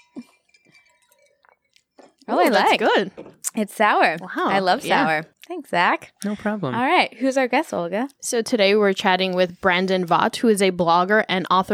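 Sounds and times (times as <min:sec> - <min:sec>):
glasses clinking in a toast: 0:00.0 - 0:03.3
speech: 0:02.3 - 0:11.7.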